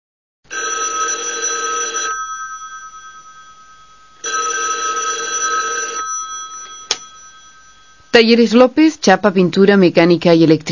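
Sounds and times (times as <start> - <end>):
telephone ringing with electronic trills at a car repair garage: 0.5 - 8.7
speech: 8.2 - 10.6.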